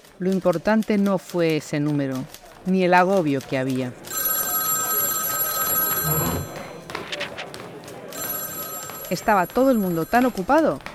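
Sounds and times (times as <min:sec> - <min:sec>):
speech: 0:00.2 - 0:04.1, 0:09.1 - 0:10.9
indistinct voices: 0:02.3 - 0:10.4
telephone ringing with bright electronic tone: 0:04.0 - 0:06.8, 0:08.1 - 0:10.6.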